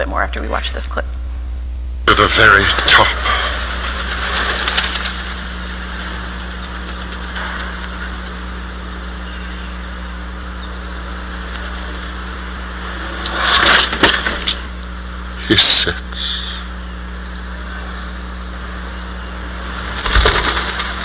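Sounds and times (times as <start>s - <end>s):
speech: 0.0s - 1.2s, 2.2s - 3.4s, 15.5s - 16.0s
steady low hum: 0.0s - 21.0s
pigeon bursting into flight with flapping wings: 2.5s - 8.6s, 11.3s - 12.6s, 19.8s - 21.0s.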